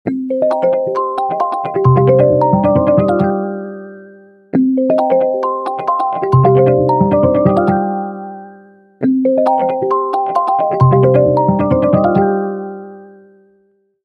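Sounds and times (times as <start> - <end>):
iOS 26 remix ringtone: 0.2 - 13.4.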